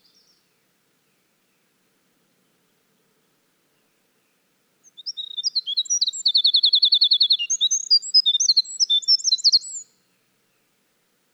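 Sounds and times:
winter wren singing: 0.0s - 11.3s.

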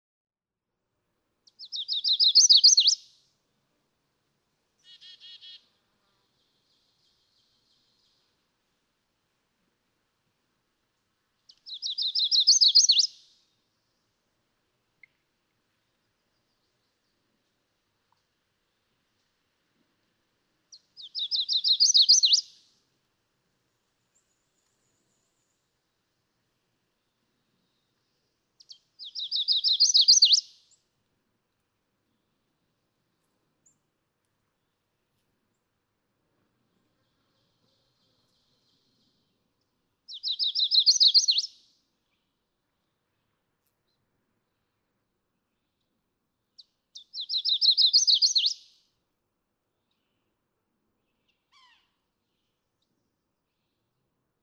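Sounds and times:
Chestnut-sided Warbler: 1.6s - 3.0s, 11.6s - 13.1s, 21.0s - 22.5s, 28.7s - 30.5s, 40.1s - 41.5s, 47.0s - 48.6s.

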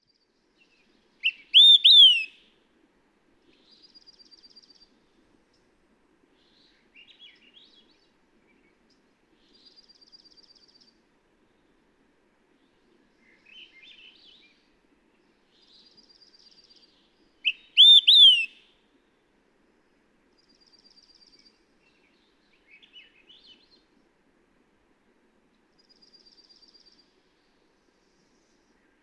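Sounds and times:
Olive-sided Flycatcher calling: 1.2s - 2.3s, 17.5s - 18.6s.

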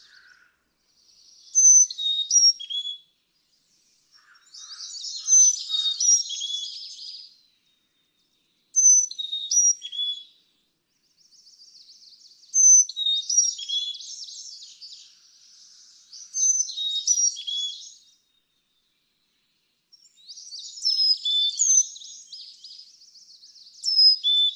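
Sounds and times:
Carolina chickadee singing thin whistled phrases: 1.5s - 3.1s, 8.8s - 10.4s, 12.5s - 14.9s, 16.3s - 18.1s, 20.1s - 22.9s, 23.8s - 24.5s.

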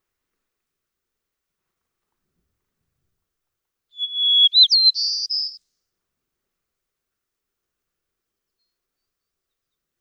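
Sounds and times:
white-crowned sparrow song: 4.0s - 5.6s.

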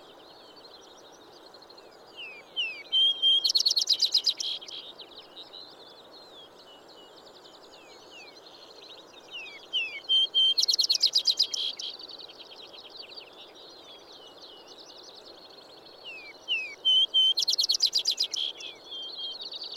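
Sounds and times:
vesper sparrow singing: 2.2s - 4.9s, 9.4s - 12.0s, 16.1s - 19.7s.

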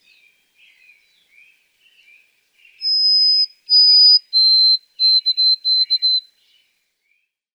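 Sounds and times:
white-throated sparrow song of pure whistles: 0.0s - 7.3s.

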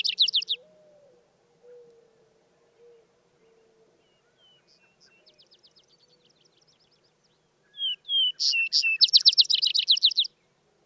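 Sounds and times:
vesper sparrow singing whistled notes and tumbling trill: 0.0s - 0.6s, 4.1s - 10.3s.

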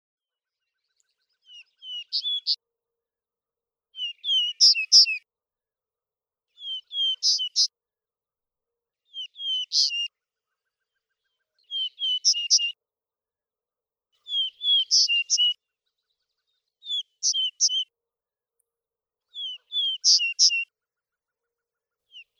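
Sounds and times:
Vesper Sparrow: 0.4s - 2.6s, 3.9s - 5.3s, 6.5s - 7.8s, 9.0s - 12.8s, 14.2s - 18.0s, 19.3s - 22.3s.

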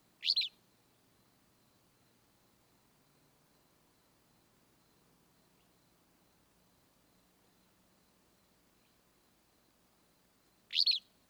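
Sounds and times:
Willow Flycatcher calling: 0.2s - 0.6s, 10.7s - 11.1s.

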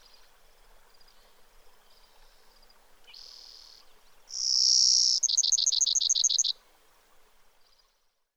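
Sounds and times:
Brewer's sparrow song with buzzes and high chipping notes: 4.3s - 6.5s.

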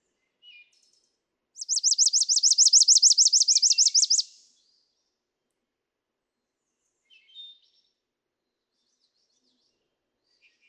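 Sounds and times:
faint brief Chipping Sparrow call: 1.6s - 4.3s
Chipping Sparrow song trill of high chips: 1.6s - 4.4s.

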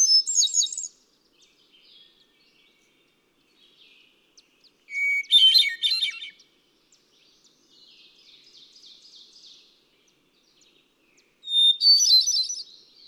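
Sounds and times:
Hermit thrush song: 0.0s - 1.0s, 4.9s - 6.4s, 11.4s - 13.0s.

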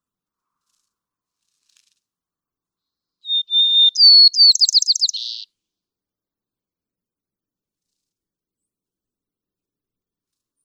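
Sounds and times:
white-crowned sparrow song: 3.3s - 5.4s.

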